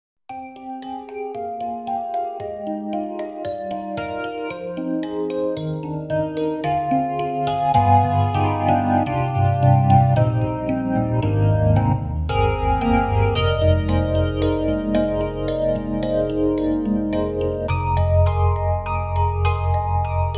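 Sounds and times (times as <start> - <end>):
Stage 73 electric piano with phase effect from a sound module: 0.3 - 20.3.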